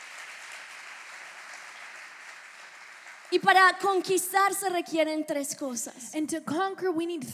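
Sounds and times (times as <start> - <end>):
crowd of people applauding: 0.0 - 4.2
speech: 3.3 - 7.3.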